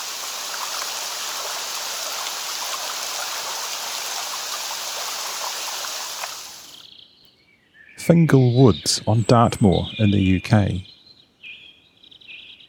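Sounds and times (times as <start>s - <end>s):
rain falling on a Scottish loch: 0.0s - 6.8s
speech: 8.0s - 10.9s.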